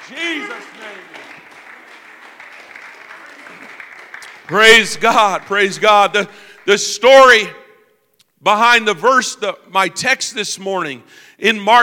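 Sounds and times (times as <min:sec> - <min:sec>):
church congregation clapping hands during a worship service: 0:00.0 - 0:07.5
speech: 0:00.1 - 0:01.4, 0:04.5 - 0:07.6, 0:08.4 - 0:11.8.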